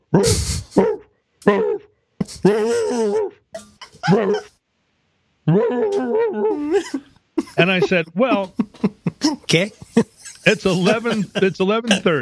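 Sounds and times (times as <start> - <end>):
human voice imitating a dog whimpering, whining and yipping: 0.0 - 4.5, 5.4 - 6.8, 9.2 - 12.2
speech: 0.1 - 3.4, 4.1 - 4.5, 5.5 - 12.2
laughter: 6.0 - 12.2.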